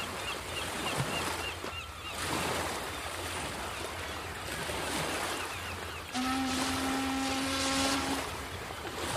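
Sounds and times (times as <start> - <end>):
rough sea waves roaring: 0.0 - 9.1
steamboat engine noise: 5.8 - 9.1
long low steamboat horn blowing: 6.1 - 8.5.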